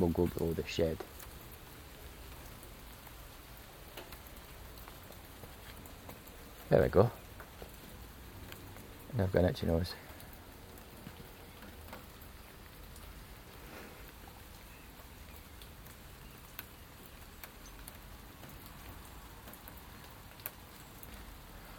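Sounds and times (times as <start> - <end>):
speech: 0.0 - 1.2, 6.7 - 7.2, 9.1 - 10.0
raindrops dripping onto buckets and shed roofs: 0.0 - 21.7.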